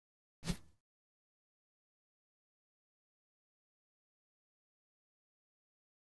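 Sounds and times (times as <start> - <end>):
video camera movement sound effect: 0.4 - 0.7.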